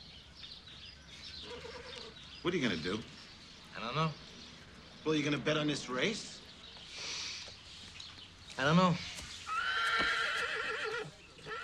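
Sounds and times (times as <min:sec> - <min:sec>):
horse whinnying in a stall: 0:01.4 - 0:02.1, 0:09.5 - 0:11.6
speech: 0:02.4 - 0:03.2, 0:03.8 - 0:04.2, 0:05.0 - 0:06.4, 0:08.6 - 0:09.1.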